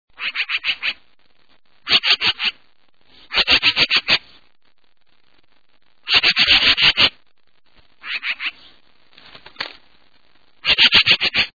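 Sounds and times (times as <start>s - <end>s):
black-billed magpie calling: 0.2s - 1.0s, 1.8s - 2.6s, 3.3s - 4.2s, 6.0s - 7.1s, 8.0s - 8.7s, 10.6s - 11.5s.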